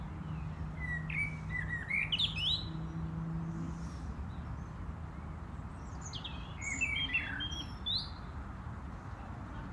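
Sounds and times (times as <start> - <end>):
European robin singing: 0.0 - 3.2, 4.2 - 9.7.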